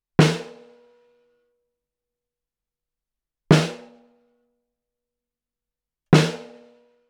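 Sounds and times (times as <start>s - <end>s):
snare drum recorded with a bidirectional ribbon microphone: 3.5s - 3.8s, 6.2s - 6.5s.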